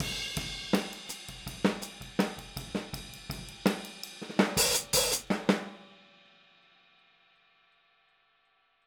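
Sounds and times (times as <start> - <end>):
boogaloo hi-hat beat: 0.0 - 5.6.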